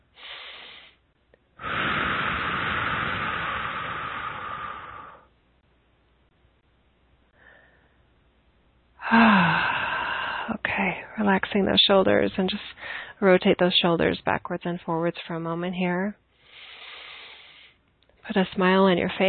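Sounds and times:
deep breath in and out during a guided relaxation: 0.1s - 5.4s, 7.3s - 8.1s, 9.0s - 10.5s, 12.8s - 13.2s, 16.3s - 17.8s
speech: 9.1s - 9.6s, 11.2s - 16.2s, 18.3s - 19.2s.

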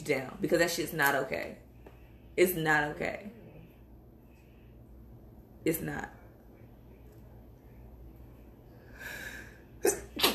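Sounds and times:
speech: 0.1s - 1.7s, 2.4s - 3.4s, 5.6s - 6.2s
sneeze: 9.9s - 10.3s.

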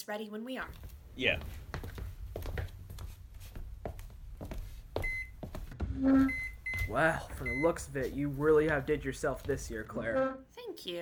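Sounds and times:
speech: 0.0s - 1.7s, 6.0s - 11.0s
electronic oven beeping while being set to preheat: 5.0s - 8.2s.

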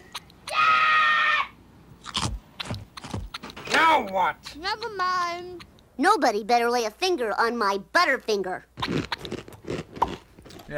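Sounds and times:
boy screaming: 0.4s - 1.6s
speech: 3.9s - 9.1s.

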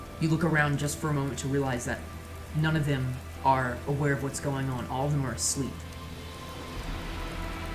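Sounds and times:
steady rain striking a hard surface: 0.0s - 7.7s
speech: 0.2s - 5.9s
low rumbling undertone: 5.8s - 7.7s.

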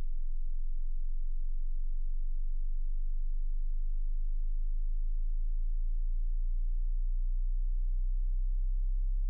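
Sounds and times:
low-frequency sine test tone sweeping upward from 20 hertz: 0.0s - 9.2s.

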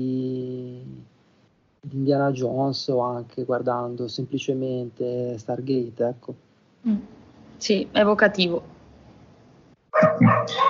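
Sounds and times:
speech: 2.0s - 8.8s, 10.0s - 10.6s
dog barking: 10.0s - 10.6s.

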